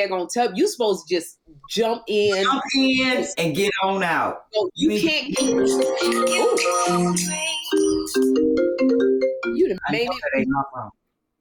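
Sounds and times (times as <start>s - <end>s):
speech: 0.0s - 11.0s
incoming call ringtone on a computer: 5.4s - 10.4s.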